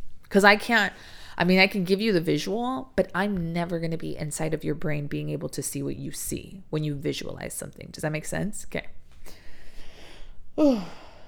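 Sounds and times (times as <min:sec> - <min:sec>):
speech: 0:00.3 - 0:09.4, 0:10.6 - 0:11.0
person yawning: 0:10.6 - 0:11.2.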